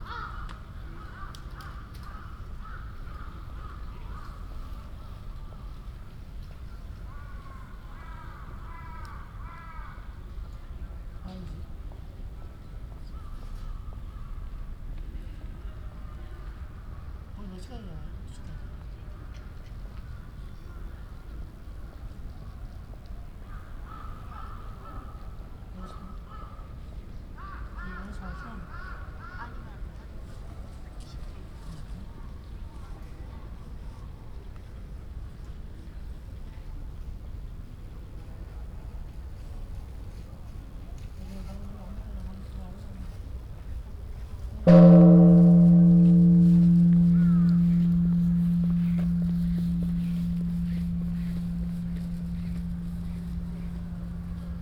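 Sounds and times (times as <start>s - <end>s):
bells of time ringing in Ueno: 44.7s - 54.6s.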